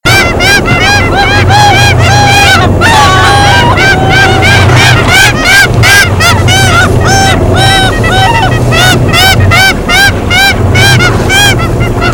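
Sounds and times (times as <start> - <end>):
Olrog's gull Larus belcheri atlantica calling: 0.0 - 12.1
laughter: 0.1 - 12.1.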